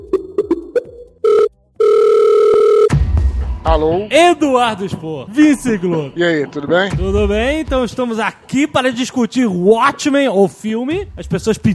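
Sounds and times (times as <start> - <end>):
telephone ringing tone while placing a call: 1.2 - 2.9
speech: 3.6 - 11.7.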